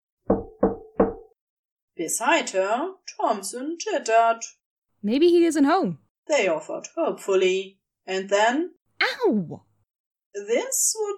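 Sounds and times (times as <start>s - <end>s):
firm knocking on a wooden door: 0.3s - 1.4s
speech: 2.0s - 9.7s, 10.3s - 11.1s.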